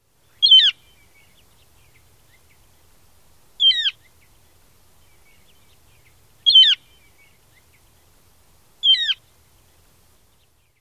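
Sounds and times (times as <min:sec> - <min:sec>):
bird keew call: 0:00.4 - 0:01.4, 0:03.6 - 0:04.1, 0:06.4 - 0:07.3, 0:08.8 - 0:09.3.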